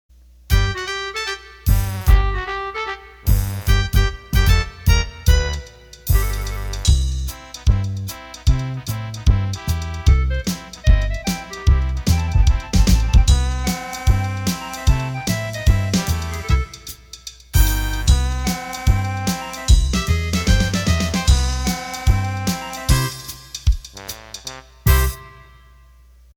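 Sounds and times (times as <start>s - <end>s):
accordion music: 0.5s - 25.6s.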